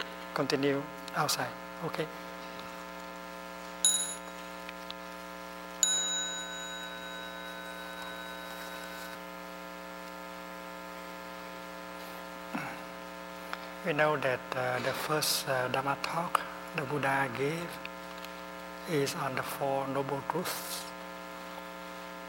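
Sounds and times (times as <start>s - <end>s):
steady electrical hum: 0.0s - 22.2s
speech: 0.4s - 2.3s, 13.8s - 17.9s, 18.9s - 20.9s
small meditation bell ringing: 3.8s - 4.7s, 5.8s - 9.2s.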